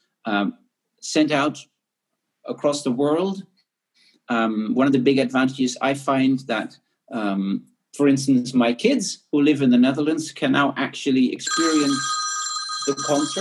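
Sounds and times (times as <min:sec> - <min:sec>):
speech: 0:00.2 - 0:01.7, 0:02.4 - 0:03.5, 0:04.3 - 0:12.2, 0:12.8 - 0:13.4
telephone ringing with steady electronic trill: 0:11.5 - 0:13.4.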